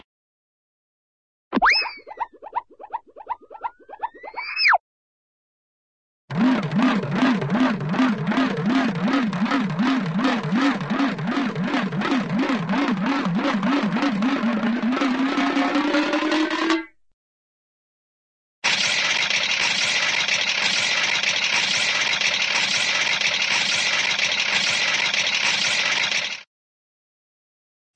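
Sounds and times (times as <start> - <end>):
cartoon spin: 1.6 - 4.8, 6.3 - 16.9, 18.6 - 26.4.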